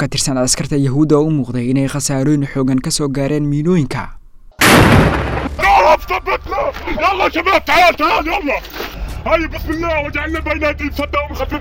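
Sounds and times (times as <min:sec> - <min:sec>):
speech: 0:00.0 - 0:04.2, 0:06.1 - 0:11.5
heavy gunfire from fighters shooting at soldiers in combat: 0:04.6 - 0:05.7.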